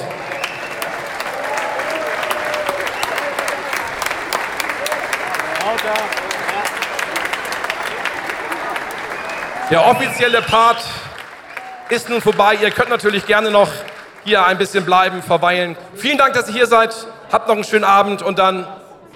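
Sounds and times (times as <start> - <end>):
faint crowd murmur: 0.0 - 9.7
large crowd applauding at a sports awards ceremony in Norderstedt: 0.0 - 15.3
speech: 5.9 - 6.3, 9.7 - 11.1, 11.9 - 18.8.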